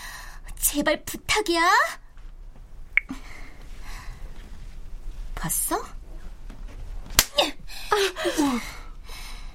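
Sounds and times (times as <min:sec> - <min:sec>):
speech: 0:00.7 - 0:02.0, 0:05.4 - 0:05.9, 0:07.4 - 0:08.7
slap in a tense drama scene: 0:07.1 - 0:07.4.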